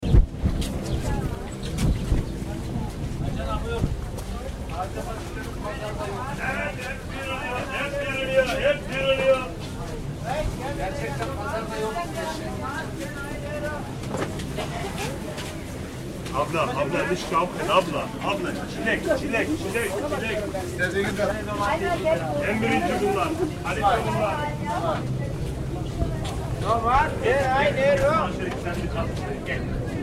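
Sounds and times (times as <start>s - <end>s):
marketplace ambience: 0.0s - 30.0s.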